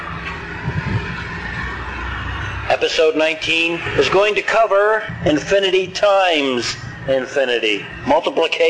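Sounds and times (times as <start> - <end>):
trucks and cars driving past: 0.0 - 8.6
speech: 2.7 - 8.6.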